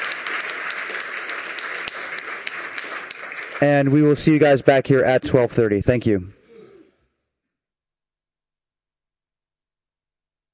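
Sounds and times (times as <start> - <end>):
audience applause for presenters: 0.0 - 4.7
speech: 3.6 - 6.4.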